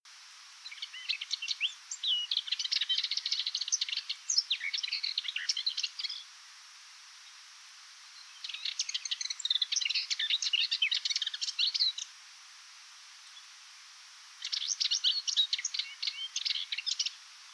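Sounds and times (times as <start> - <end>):
subalpine warbler song: 0.5 - 6.3, 8.0 - 12.2, 14.4 - 17.5.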